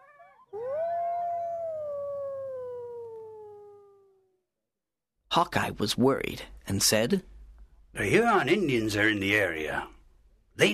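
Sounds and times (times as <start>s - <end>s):
wolf howling: 0.0s - 4.4s
speech: 5.3s - 7.3s, 8.0s - 10.0s, 10.6s - 10.7s.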